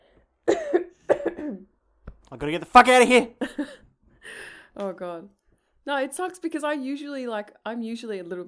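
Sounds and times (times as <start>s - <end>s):
harsh coughs with raspy tails: 0.5s - 1.7s
speech: 2.3s - 3.8s, 4.8s - 8.4s.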